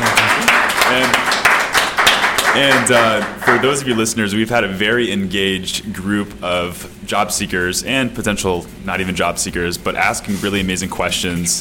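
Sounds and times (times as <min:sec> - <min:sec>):
group applauding: 0:00.0 - 0:04.1
speech: 0:02.6 - 0:11.5.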